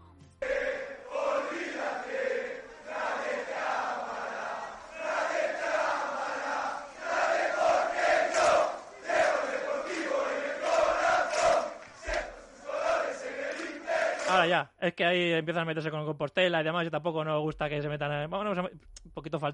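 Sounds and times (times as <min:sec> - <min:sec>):
large crowd of football supporters singing a chant in stadium: 0:00.4 - 0:14.5
speech: 0:14.5 - 0:19.5.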